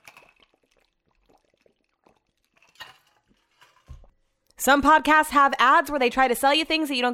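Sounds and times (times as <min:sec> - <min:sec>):
swallowing: 0:00.0 - 0:03.3
person drinking water: 0:00.0 - 0:04.6
speech: 0:04.6 - 0:07.1.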